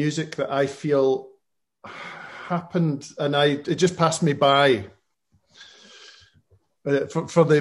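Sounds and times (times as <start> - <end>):
speech: 0.0 - 5.0, 6.8 - 7.5
person sniffing at a glass of beer: 5.4 - 6.4.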